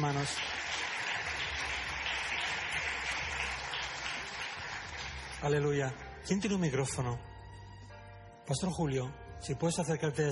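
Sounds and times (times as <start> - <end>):
speech: 0.0 - 0.9, 5.4 - 7.3, 8.5 - 10.3
crowd applauding: 0.0 - 6.0.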